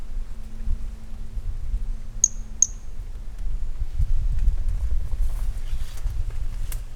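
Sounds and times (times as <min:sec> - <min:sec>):
constant low rumble of background noise: 0:00.0 - 0:06.9
Brachycephalus mirissimus call with very high short tonal chirps: 0:02.2 - 0:02.9.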